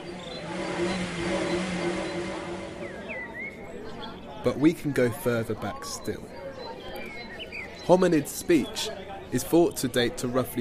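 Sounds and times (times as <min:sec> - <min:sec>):
car engine droning: 0:00.0 - 0:03.6
speech: 0:04.4 - 0:06.4, 0:07.9 - 0:10.5.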